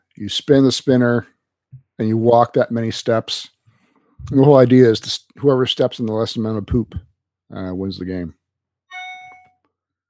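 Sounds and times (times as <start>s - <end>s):
speech: 0.2s - 1.4s, 2.0s - 3.6s, 4.2s - 8.4s
short bright electronic chime: 8.9s - 9.6s.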